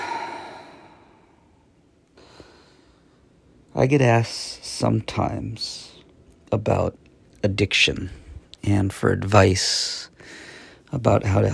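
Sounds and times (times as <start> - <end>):
long deep breath: 0.0 - 3.2, 10.2 - 10.9
speech: 3.8 - 5.8, 6.5 - 11.5.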